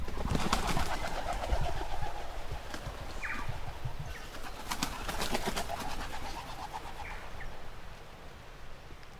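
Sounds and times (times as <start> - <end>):
flock of native wood pigeons taking off: 0.0 - 7.1.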